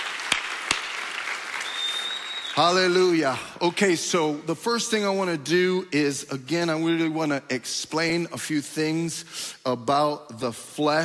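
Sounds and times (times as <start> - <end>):
church congregation clapping during a service: 0.0 - 3.4
speech: 2.6 - 11.0.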